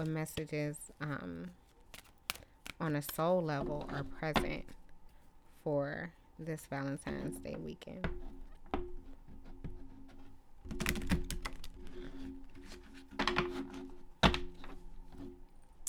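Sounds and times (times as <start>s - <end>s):
speech: 0.0s - 1.6s, 2.8s - 4.8s, 5.6s - 8.4s
faint steady hum: 0.0s - 15.8s
deck of oracle cards being shuffled: 1.4s - 3.2s.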